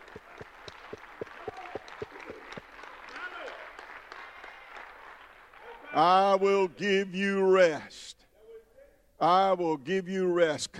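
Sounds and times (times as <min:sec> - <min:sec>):
crowd applause and murmur: 0:00.0 - 0:06.0
group of people clapping for the glory of the Lord: 0:00.0 - 0:06.2
speech: 0:06.0 - 0:08.2, 0:09.2 - 0:10.7.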